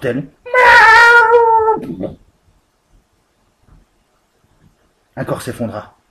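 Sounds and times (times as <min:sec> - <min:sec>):
speech: 0:00.0 - 0:01.0, 0:01.8 - 0:02.2, 0:05.2 - 0:06.0
cat yowling in pain: 0:00.5 - 0:02.0.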